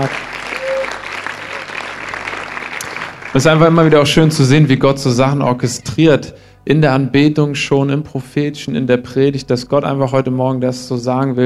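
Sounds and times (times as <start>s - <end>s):
speech: 0.0s - 0.3s, 3.3s - 11.4s
audience applause: 0.0s - 4.3s.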